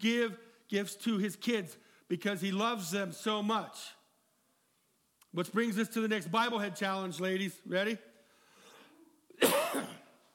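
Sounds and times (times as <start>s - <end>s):
speech: 0.0s - 4.0s, 5.3s - 8.1s
harsh cough: 9.3s - 10.2s.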